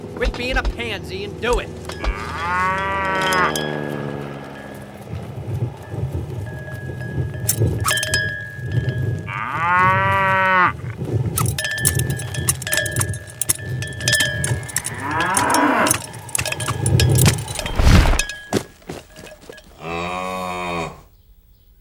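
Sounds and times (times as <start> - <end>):
clanks: 0.0 - 9.3, 11.2 - 19.8
speech: 0.2 - 4.0, 7.5 - 8.2
cow mooing: 1.8 - 5.9, 9.2 - 11.1, 13.8 - 17.7, 19.8 - 21.1.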